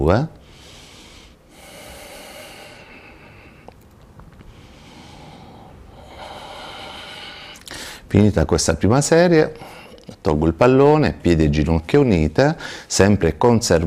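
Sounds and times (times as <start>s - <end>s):
speech: 0.0s - 0.4s, 8.1s - 13.8s
slow breathing during a lumbar floor exercise: 0.4s - 3.8s, 4.4s - 8.1s, 12.6s - 12.9s.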